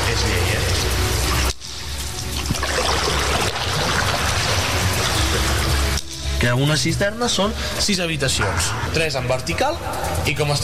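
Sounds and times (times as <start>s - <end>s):
water sloshing and trickling around a small boat in an underground cistern: 0.6s - 6.4s
speech: 6.4s - 10.6s.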